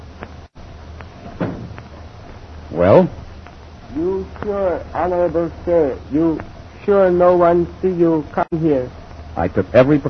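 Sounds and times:
thud: 0:01.2 - 0:01.8
door opening and closing: 0:01.2 - 0:01.9
speech: 0:02.8 - 0:03.2, 0:04.4 - 0:10.0.

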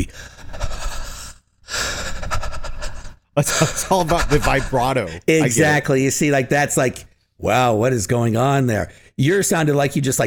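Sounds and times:
speech: 0:00.0 - 0:00.3, 0:03.4 - 0:10.2
voice imitating creepy raspy breathing: 0:00.0 - 0:05.3.

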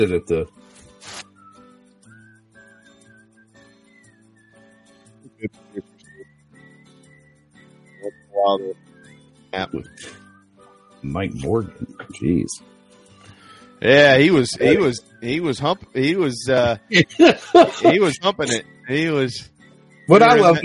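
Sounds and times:
speech: 0:00.0 - 0:01.3, 0:05.4 - 0:05.9, 0:08.0 - 0:08.8, 0:09.5 - 0:10.2, 0:11.0 - 0:12.7, 0:13.8 - 0:19.5, 0:20.1 - 0:20.6
sharp bursts and rustles: 0:00.7 - 0:01.3
person whistling a closing tune: 0:01.2 - 0:12.2, 0:13.1 - 0:20.6
laughter: 0:14.1 - 0:15.0, 0:16.0 - 0:18.6, 0:20.2 - 0:20.6.

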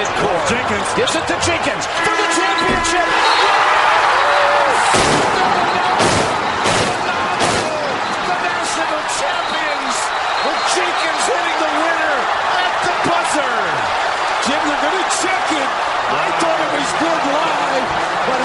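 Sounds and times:
loud cheering crowd: 0:00.0 - 0:18.4
voices shouting: 0:00.0 - 0:18.4
speech: 0:00.5 - 0:03.6, 0:09.2 - 0:18.4
confetti cannons firing at a basketball tournament final: 0:04.8 - 0:07.9.

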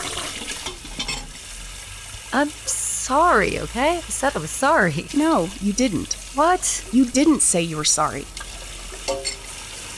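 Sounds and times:
water running from a tap into a sink: 0:00.0 - 0:09.9
dishes knocking together: 0:00.6 - 0:01.4, 0:09.0 - 0:09.5
speech: 0:02.3 - 0:08.4, 0:09.1 - 0:09.4.

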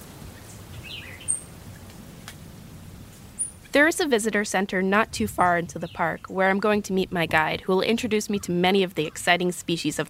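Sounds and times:
steady soft hiss: 0:00.0 - 0:07.4
birds chirping outdoors: 0:00.3 - 0:01.5, 0:03.4 - 0:10.0
speech: 0:03.8 - 0:10.0.

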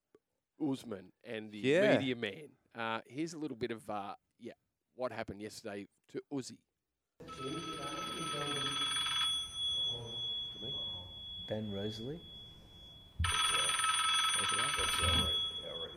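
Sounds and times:
speech: 0:00.6 - 0:08.8, 0:11.5 - 0:12.3, 0:14.4 - 0:15.4
phone ringing with electronic trill: 0:07.2 - 0:15.9.

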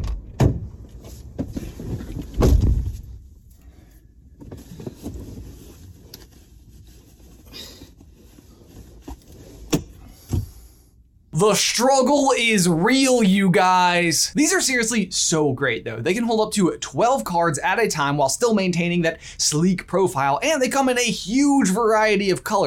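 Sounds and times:
thumps and bumps of someone climbing into a car: 0:00.0 - 0:03.4, 0:07.9 - 0:10.7
shuffling and rustling in a small enclosed space: 0:00.7 - 0:10.6
speech: 0:11.4 - 0:22.6.

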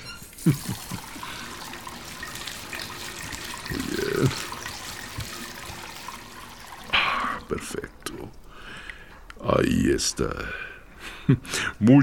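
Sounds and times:
water running from a tap: 0:00.2 - 0:08.5
speech: 0:00.4 - 0:01.0, 0:04.2 - 0:04.5, 0:09.8 - 0:10.6, 0:11.3 - 0:12.0
laughter: 0:00.4 - 0:01.5.

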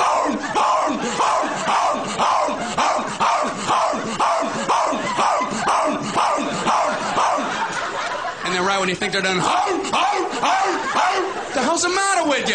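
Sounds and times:
person imitating a dog barking: 0:00.0 - 0:07.6, 0:09.4 - 0:11.4
laughter: 0:00.0 - 0:12.5
speech: 0:08.9 - 0:10.6, 0:11.7 - 0:12.5.

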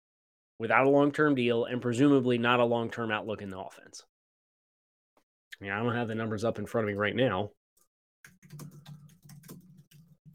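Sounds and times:
speech: 0:00.6 - 0:04.1, 0:05.6 - 0:07.6, 0:08.5 - 0:08.9
fingers pounding on a computer keyboard: 0:08.3 - 0:10.3.

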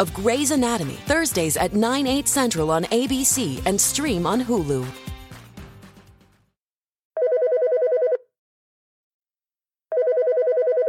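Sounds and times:
speech: 0:00.0 - 0:05.1
telephone ringing with trilling electronic tone: 0:07.2 - 0:08.3, 0:09.9 - 0:10.8.

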